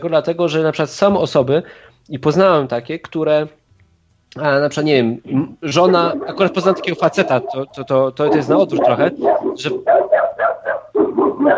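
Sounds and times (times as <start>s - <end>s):
speech: 0.0s - 3.6s, 4.3s - 10.1s
dog barking: 5.7s - 11.5s.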